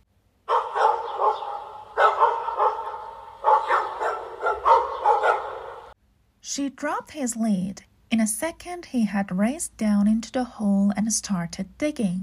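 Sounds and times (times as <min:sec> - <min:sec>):
dog on a lead howling at the top of a hill: 0:00.5 - 0:06.0
speech: 0:06.5 - 0:12.2.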